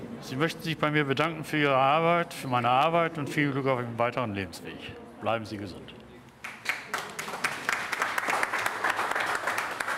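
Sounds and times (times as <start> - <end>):
speech: 0.2 - 6.0
crowd applauding: 6.4 - 9.9.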